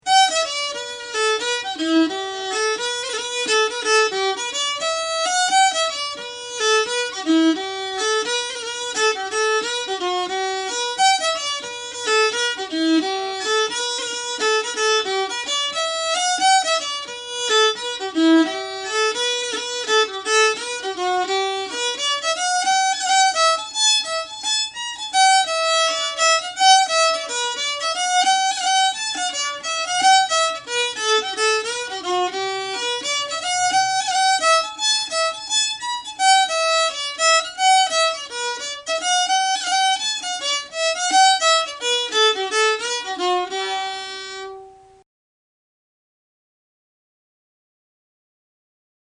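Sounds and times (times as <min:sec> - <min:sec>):
violin folk tune: 0:00.0 - 0:45.0.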